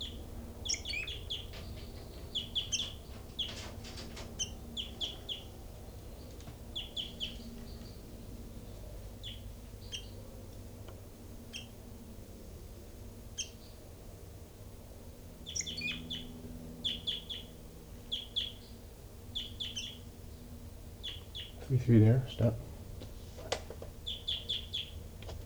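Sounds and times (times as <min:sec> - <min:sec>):
small caged birds chirping and tweeting: 0:00.0 - 0:14.0, 0:15.2 - 0:25.4
steady low hum: 0:00.0 - 0:25.4
speech: 0:21.7 - 0:22.7.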